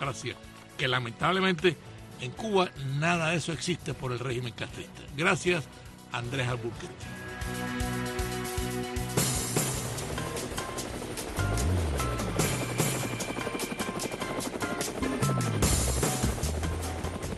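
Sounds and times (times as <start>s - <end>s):
speech: 0.0s - 9.0s
helicopter rotor blades thumping overhead: 9.1s - 17.3s.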